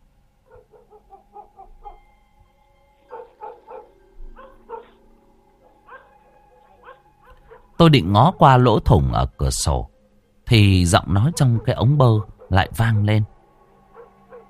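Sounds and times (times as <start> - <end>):
neighbouring house's dog barking: 0.5 - 2.1, 3.1 - 5.0, 5.6 - 7.8, 11.2 - 13.3, 13.9 - 14.4
speech: 7.8 - 9.9, 10.5 - 13.3.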